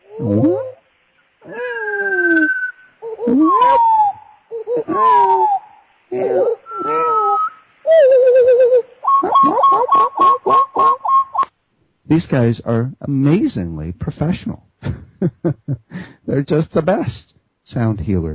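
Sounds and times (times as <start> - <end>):
speech: 0.2 - 0.7, 12.1 - 14.7, 15.4 - 18.3
bird calls with sliding whistled phrases: 1.4 - 11.5.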